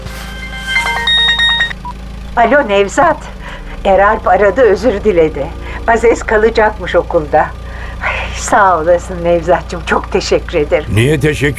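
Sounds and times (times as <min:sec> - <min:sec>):
mobile phone ringing with a bright bubbly melodic ringtone: 0:00.0 - 0:01.9
steady low hum: 0:00.0 - 0:11.5
speech: 0:02.4 - 0:07.6, 0:08.4 - 0:11.5.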